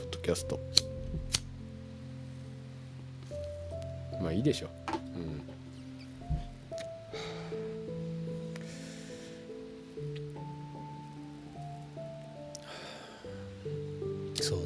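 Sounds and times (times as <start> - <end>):
quiet music: 0.0 - 14.6
speech: 0.3 - 1.4, 4.2 - 5.6
lighter clicking to light a cigarette: 0.7 - 1.5
person drawing breaths and exhaling while smoking a cigarette: 6.7 - 10.4, 12.4 - 13.9.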